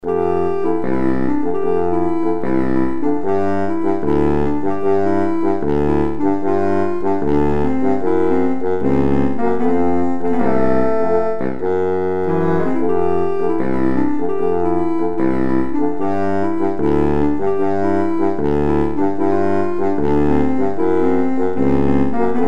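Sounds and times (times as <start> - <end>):
baritone sax: 0.0 - 22.4.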